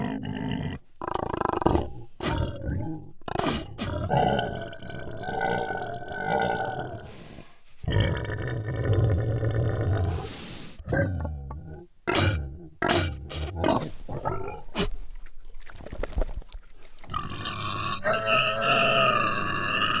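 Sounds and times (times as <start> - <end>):
pig grunting: 0.0 - 7.2, 7.8 - 15.0, 17.1 - 19.9.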